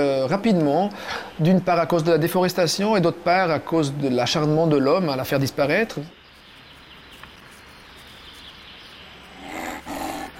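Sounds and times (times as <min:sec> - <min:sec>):
speech: 0:00.0 - 0:06.2
wolf howling: 0:09.3 - 0:10.3.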